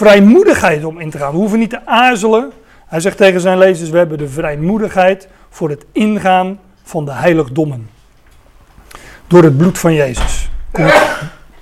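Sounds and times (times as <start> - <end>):
speech: 0.0 - 8.0, 9.3 - 11.4
single sudden loud sneeze: 10.8 - 11.5.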